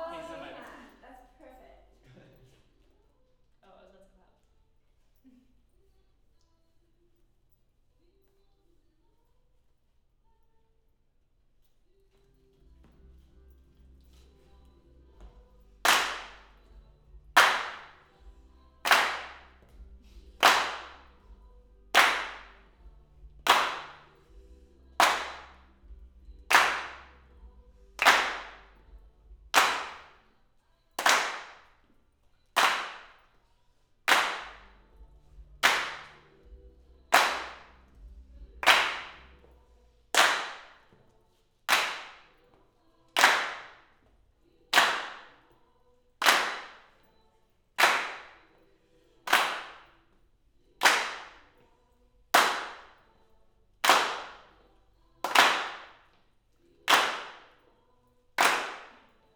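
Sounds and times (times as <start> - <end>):
mid hand claps: 15.2 - 21.3, 21.9 - 24.4, 25.0 - 30.3, 31.0 - 31.8, 32.6 - 33.3, 34.1 - 37.9, 38.6 - 39.6, 40.2 - 41.0, 41.7 - 42.6, 43.2 - 44.1, 44.7 - 45.5, 46.2 - 47.0, 47.8 - 48.5, 49.3 - 50.0, 50.8 - 51.6, 52.4 - 53.0, 53.8 - 54.6, 55.2 - 56.2, 56.9 - 57.6, 58.4 - 59.2.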